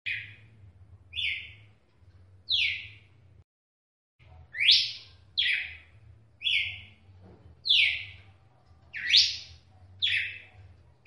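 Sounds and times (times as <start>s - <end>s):
red-cowled cardinal whistled song: 1.1s - 1.7s, 2.5s - 3.1s, 4.5s - 7.0s, 7.6s - 8.2s, 8.9s - 11.0s.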